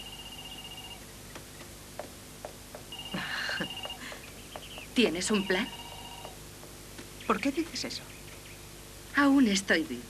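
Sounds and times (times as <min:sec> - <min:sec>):
telephone ringing with electronic warbling trill: 0:00.0 - 0:01.1, 0:02.9 - 0:06.4
speech: 0:05.0 - 0:05.8, 0:07.3 - 0:08.2, 0:09.2 - 0:10.0.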